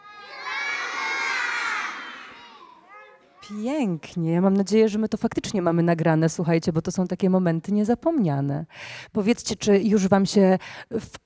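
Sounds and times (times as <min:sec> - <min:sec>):
group of children shouting loudly together in unison: 0:00.0 - 0:03.5
speech: 0:03.5 - 0:11.2.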